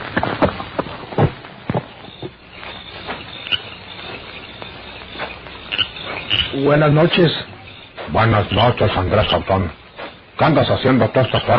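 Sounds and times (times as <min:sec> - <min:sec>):
horse hooves walking on a road: 0:00.0 - 0:11.5
speech: 0:06.6 - 0:07.5, 0:08.2 - 0:09.8, 0:10.4 - 0:11.5.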